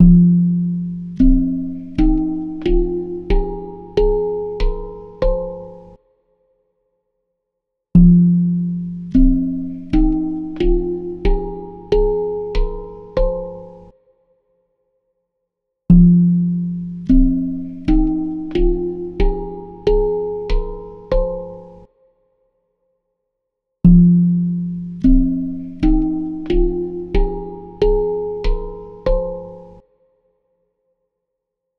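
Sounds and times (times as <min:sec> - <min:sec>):
handpan melody recorded with piezo pickup: 0:00.0 - 0:06.0, 0:08.0 - 0:13.9, 0:15.9 - 0:21.9, 0:23.9 - 0:29.8.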